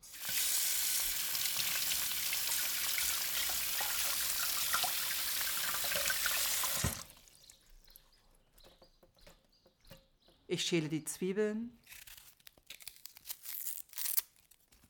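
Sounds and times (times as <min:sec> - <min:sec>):
running tap water: 0:00.0 - 0:07.4
small irregular splashes of something rinsed under tap water: 0:01.0 - 0:07.4
speech: 0:10.5 - 0:11.8.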